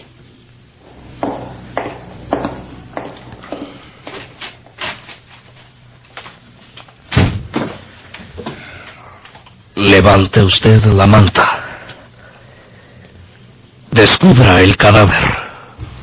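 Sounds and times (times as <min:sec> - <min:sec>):
scattered footsteps and shuffling: 0:00.8 - 0:07.0
door thudding shut: 0:07.1 - 0:07.8
speech: 0:09.9 - 0:11.6, 0:14.0 - 0:15.4.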